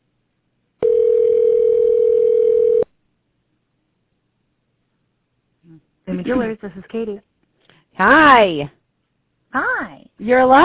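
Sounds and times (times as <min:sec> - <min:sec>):
telephone ringback tone while a call connects: 0:00.8 - 0:02.9
speech: 0:06.3 - 0:07.3, 0:08.0 - 0:08.8, 0:09.5 - 0:10.6.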